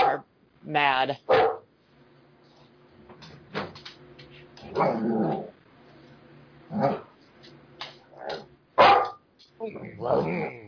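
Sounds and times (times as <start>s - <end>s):
female dog barking: 0.0s - 0.2s, 1.3s - 1.7s, 8.3s - 9.2s
speech: 0.2s - 1.5s, 4.7s - 5.5s, 6.7s - 7.1s, 9.6s - 10.6s
female dog growling: 4.6s - 5.6s, 6.7s - 7.1s, 9.6s - 10.6s.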